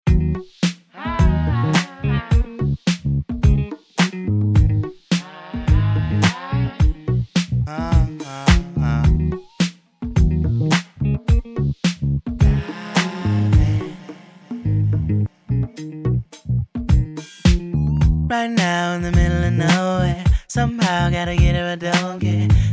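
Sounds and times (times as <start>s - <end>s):
mastered R and B funk music: 0.0s - 22.7s.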